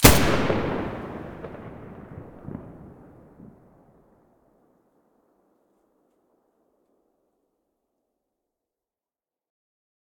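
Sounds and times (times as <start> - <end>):
rifle gunshot in stereo: 0.0 - 3.6.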